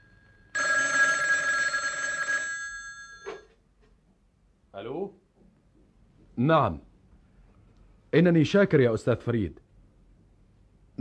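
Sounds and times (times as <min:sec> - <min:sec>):
telephone bell ringing with bright metallic trilling: 0:00.0 - 0:03.6
speech: 0:04.8 - 0:05.2, 0:06.4 - 0:06.9, 0:08.1 - 0:09.6.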